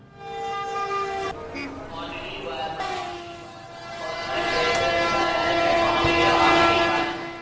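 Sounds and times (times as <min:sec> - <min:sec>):
train horn tones at Abu Road railway station: 0:00.0 - 0:01.8, 0:02.8 - 0:07.4
indistinct voices at Abu Road railway station: 0:01.4 - 0:07.2.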